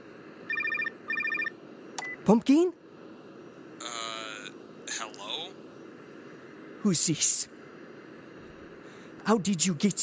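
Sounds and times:
low hum: 0.0 - 10.0
phone ringing with a rapid trilling electronic warble: 0.5 - 1.5
speech: 2.3 - 2.8, 6.8 - 7.6, 9.3 - 10.0.

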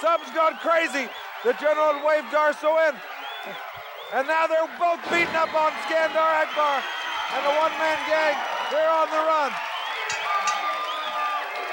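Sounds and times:
wrestling crowd cheering and shouting at a boys club: 0.0 - 11.7
speech: 0.1 - 9.7
whoops: 5.4 - 11.7.

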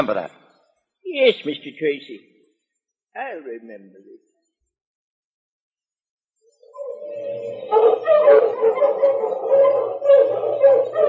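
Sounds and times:
speech: 0.0 - 0.4, 1.1 - 2.3, 3.2 - 4.3, 7.1 - 11.0
pack of sled dogs barking and yipping: 6.7 - 11.0.

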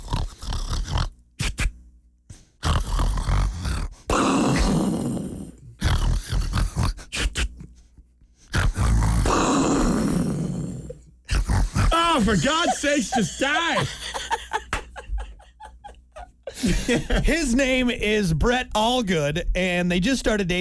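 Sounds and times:
loud rasping snoring: 0.0 - 1.7, 2.6 - 7.5, 8.5 - 12.3
laughter: 11.8 - 17.5
speech: 12.3 - 14.2, 16.7 - 20.6.

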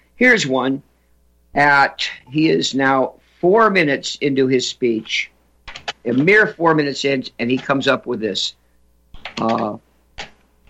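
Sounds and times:
speech: 0.2 - 0.9, 1.6 - 5.3, 6.0 - 8.6, 9.3 - 9.9
typing on a computer keyboard: 5.7 - 6.3, 7.4 - 7.8, 9.1 - 10.6.

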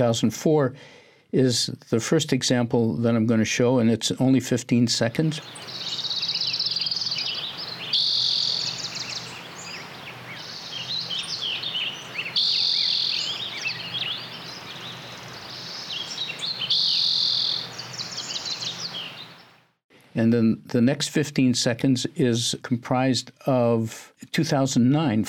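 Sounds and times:
speech: 0.0 - 6.0, 20.3 - 25.2
dense chorus of many bird species chirping, trilling and calling: 5.2 - 19.7.

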